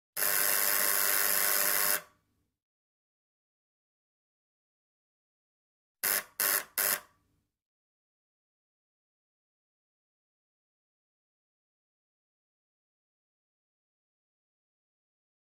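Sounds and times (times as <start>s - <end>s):
intercom buzzer: 0.2s - 2.1s, 6.0s - 7.1s.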